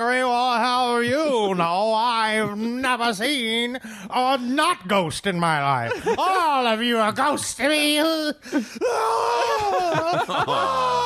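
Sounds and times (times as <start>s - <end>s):
speech: 1.0s - 11.0s
laughter: 5.7s - 6.8s, 8.5s - 11.0s
person screaming: 8.8s - 11.0s.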